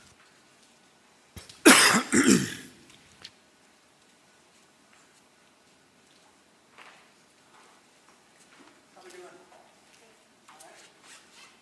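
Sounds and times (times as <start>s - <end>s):
person clearing throat during a church service: 1.7s - 2.7s.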